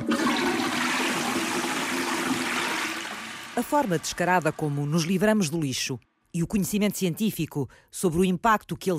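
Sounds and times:
toilet flushing: 0.0 - 5.5
speech: 3.6 - 8.9.

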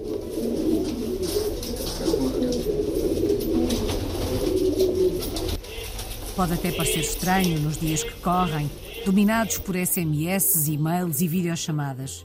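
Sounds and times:
flock of police carrier pigeons cooing in Odisha state eastern India: 0.0 - 9.6
speech: 6.4 - 12.2.

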